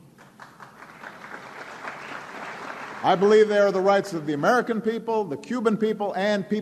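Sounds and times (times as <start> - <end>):
crowd applauding: 0.2 - 3.9
speech: 3.0 - 6.5.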